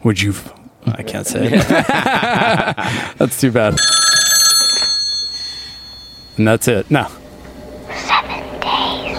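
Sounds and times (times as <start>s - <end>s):
speech: 0.0s - 4.3s, 6.4s - 7.2s
laughter: 1.0s - 3.3s
telephone bell ringing: 3.8s - 6.5s.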